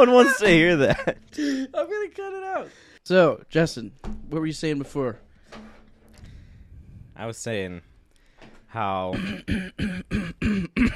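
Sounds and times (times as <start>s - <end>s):
speech: 0.0s - 5.7s, 7.2s - 7.9s, 8.7s - 10.9s
throat clearing: 9.2s - 10.9s.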